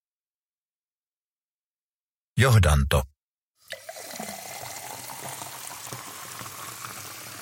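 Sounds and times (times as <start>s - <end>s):
speech: 2.4s - 3.1s
water pouring from tap into glass: 3.6s - 7.4s.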